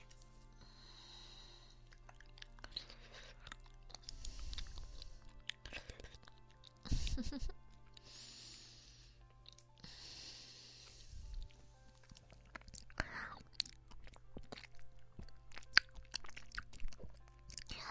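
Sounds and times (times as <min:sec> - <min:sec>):
two people chewing and taking crunchy bites of shared food: 0:01.8 - 0:06.9, 0:11.2 - 0:17.8.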